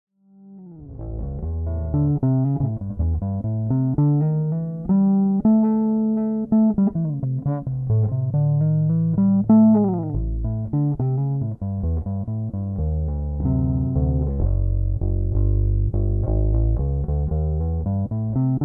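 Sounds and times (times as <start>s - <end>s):
electric bass guitar: 0.4s - 18.6s.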